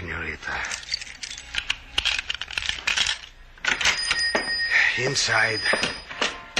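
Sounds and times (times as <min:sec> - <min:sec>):
keys jangling and clinking as someone fumbles them at a door lock: 0:00.6 - 0:04.4
speech: 0:05.0 - 0:06.0.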